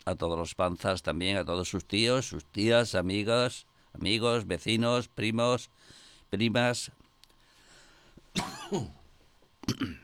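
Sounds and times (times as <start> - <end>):
speech: 0.0 - 7.0, 8.4 - 9.0, 9.7 - 10.0
harsh coughing fit: 8.3 - 9.0, 9.6 - 10.0.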